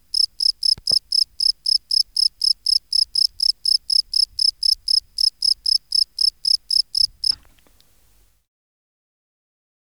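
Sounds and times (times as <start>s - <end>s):
Gryllus campestris field cricket chirping: 0.0s - 7.5s
faint noise: 0.0s - 8.4s.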